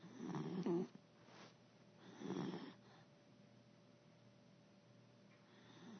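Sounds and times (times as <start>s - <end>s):
soft rumbling snores: 0.0s - 3.1s, 5.5s - 5.9s.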